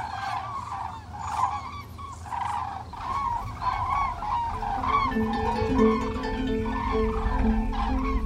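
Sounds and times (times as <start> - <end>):
large flock of cranes calling in flight: 0.0 - 8.2
low rumble of wind or traffic: 3.4 - 8.2.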